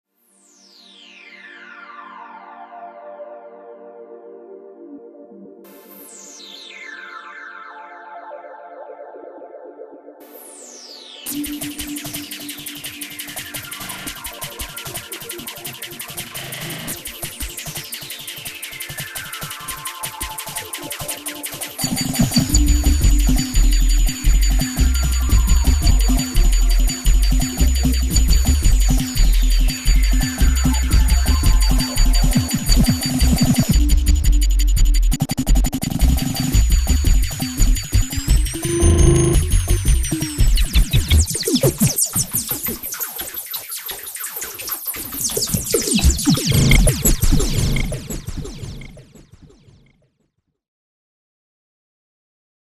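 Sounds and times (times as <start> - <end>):
Roland JP-8080 synthesizer: 0.2 - 50.0.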